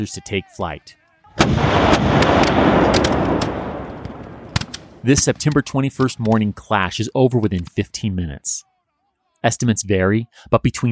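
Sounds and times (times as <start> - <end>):
speech: 0.0 - 3.6, 5.0 - 8.7, 9.4 - 10.8
U.S. artillery firing in a battle against Mexican lancers: 1.4 - 5.6.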